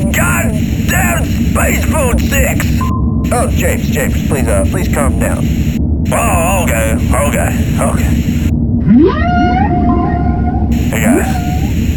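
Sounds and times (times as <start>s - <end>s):
heavy constant low rumble: 0.0s - 11.9s
speech: 1.7s - 9.9s, 10.9s - 11.5s
long eerie whale calls: 8.8s - 11.9s.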